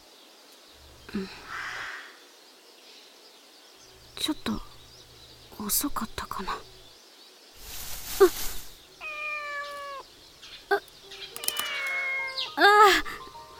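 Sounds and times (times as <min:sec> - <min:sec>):
rustle: 0:00.0 - 0:10.8
speech: 0:01.1 - 0:01.5, 0:04.2 - 0:04.7, 0:05.6 - 0:06.7, 0:08.2 - 0:08.5
cat meowing: 0:09.0 - 0:10.1, 0:11.4 - 0:12.8.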